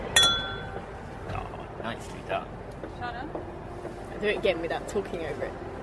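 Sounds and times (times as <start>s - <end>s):
two glasses clinking in a toast: 0.2s - 0.8s
speech: 1.9s - 5.7s.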